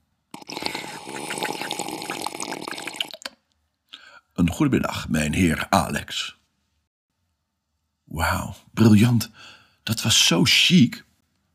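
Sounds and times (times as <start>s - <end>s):
sipping water from a glass: 0.3s - 3.4s
brief wet splash: 0.6s - 3.4s
speech: 4.4s - 6.4s, 8.2s - 11.0s.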